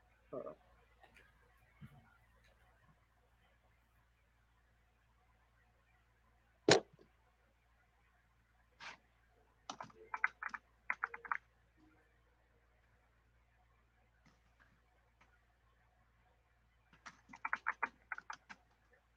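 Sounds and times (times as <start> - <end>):
typing on a computer keyboard: 9.7 - 11.4, 17.0 - 18.6.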